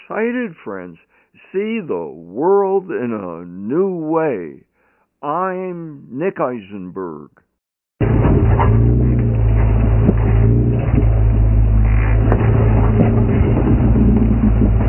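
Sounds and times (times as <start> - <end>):
speech: 0.1 - 7.4
Jeep engine rumbling while driven over obstacles: 8.0 - 14.8
knocks and clunks of a Jeep driven over obstacles: 8.0 - 14.8.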